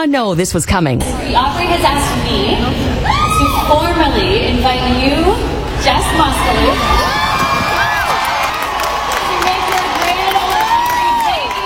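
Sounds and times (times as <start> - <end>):
speech: 0.0 - 7.2
audience at a country music stage show cheering: 6.1 - 11.6.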